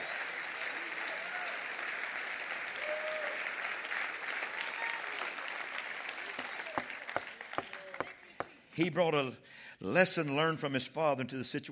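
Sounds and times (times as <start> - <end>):
crowd applauding: 0.0 - 8.6
speech: 8.8 - 11.7.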